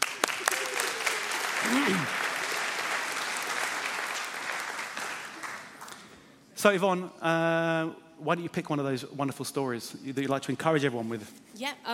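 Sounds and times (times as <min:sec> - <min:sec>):
audience applause: 0:00.0 - 0:05.9
speech: 0:06.6 - 0:11.9.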